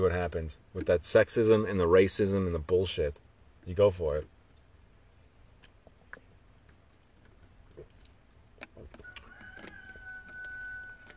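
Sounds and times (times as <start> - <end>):
speech: 0.0 - 4.4
low rumble: 0.0 - 11.1
rooster crowing: 9.0 - 11.1.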